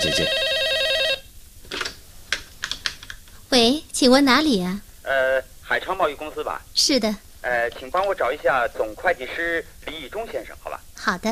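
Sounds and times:
speech: 0.0s - 0.5s, 3.5s - 11.3s
electronic telephone ring: 0.0s - 1.3s.

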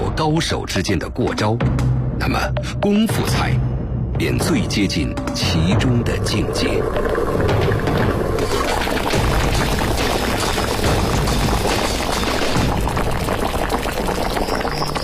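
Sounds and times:
speech: 0.2s - 7.6s
chicken soup simmering over low heat in a pot: 6.2s - 15.0s.

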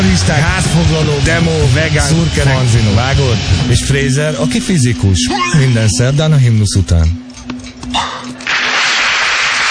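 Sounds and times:
speech: 0.1s - 7.2s
applause: 8.5s - 9.6s.

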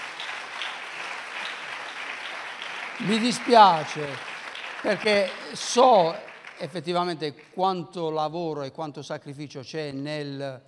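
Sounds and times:
audience applause at a gathering: 0.0s - 7.6s
speech: 3.0s - 10.6s.

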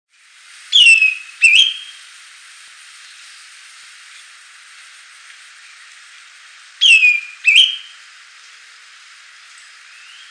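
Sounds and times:
steady light hiss: 0.1s - 10.2s
greenish schiffornis giving slurred paired whistles: 0.7s - 2.0s, 6.8s - 8.0s.

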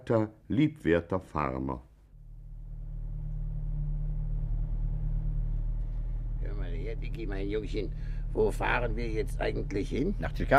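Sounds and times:
speech: 0.0s - 1.9s, 7.0s - 10.5s
stolen police car engine rumble while driving: 2.1s - 10.5s.

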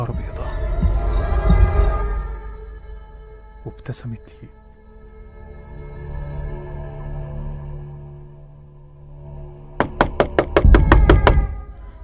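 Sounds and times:
low steady droning hum: 0.0s - 12.0s
speech: 3.7s - 4.6s
sharp knocking on a door: 9.8s - 11.6s.

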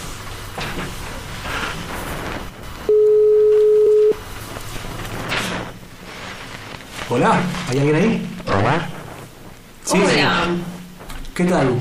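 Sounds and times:
faint noise: 0.0s - 11.7s
telephone line ringing on an outgoing call: 2.9s - 4.2s
speech: 7.1s - 9.0s, 9.9s - 10.7s, 11.4s - 11.7s.

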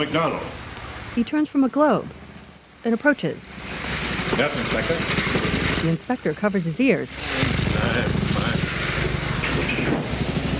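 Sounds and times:
speech: 0.0s - 0.6s, 1.2s - 2.2s, 2.8s - 3.6s, 4.4s - 8.2s
motorbike engines roaring: 0.0s - 10.5s.

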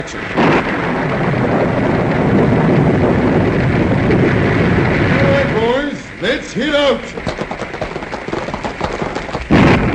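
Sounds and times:
speech: 0.0s - 0.8s, 6.4s - 7.3s
howling storm wind sound effect from a radio drama: 0.0s - 9.9s.

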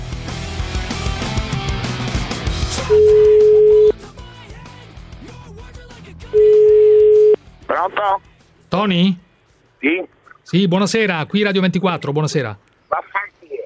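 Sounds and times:
music: 0.0s - 9.6s
telephone ringback tone as a call is placed: 2.8s - 3.9s, 6.4s - 7.4s
speech: 2.9s - 3.2s, 7.8s - 9.2s, 9.8s - 13.1s.

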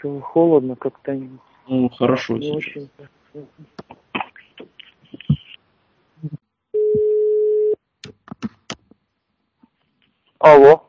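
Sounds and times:
speech: 0.0s - 3.7s, 10.4s - 10.8s
ringback tone of an unanswered phone call: 6.8s - 7.8s.

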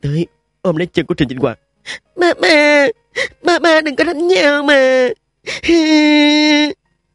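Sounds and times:
speech: 0.0s - 6.8s
child crying: 2.2s - 6.8s.

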